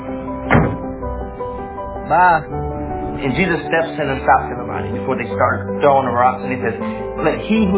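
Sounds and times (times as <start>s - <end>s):
door being opened with knocks and latch thunks: 0.5s - 1.0s
speech: 2.1s - 2.6s, 3.2s - 7.7s.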